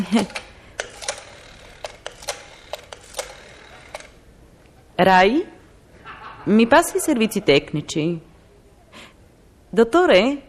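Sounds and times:
speech: 0.0 - 0.4, 5.0 - 5.5, 6.4 - 8.3, 9.7 - 10.4
rotary telephone dialing clicks: 0.2 - 4.2
laughter: 6.0 - 7.9.

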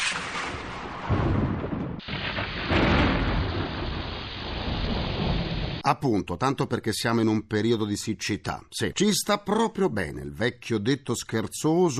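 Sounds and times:
heavy rain downpour: 0.0 - 5.8
thunder rumbling: 0.0 - 5.8
speech: 5.9 - 11.9.

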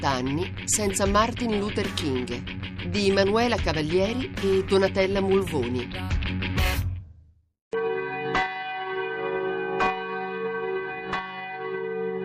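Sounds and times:
speech: 0.1 - 6.4
church bell tolling: 7.8 - 12.2.

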